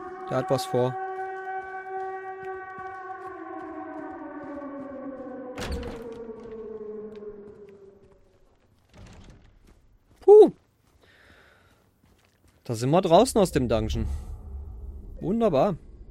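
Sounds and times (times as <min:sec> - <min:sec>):
siren wailing and winding down: 0:00.0 - 0:08.6, 0:13.0 - 0:16.1
speech: 0:00.3 - 0:01.0, 0:12.7 - 0:14.3, 0:15.2 - 0:15.9.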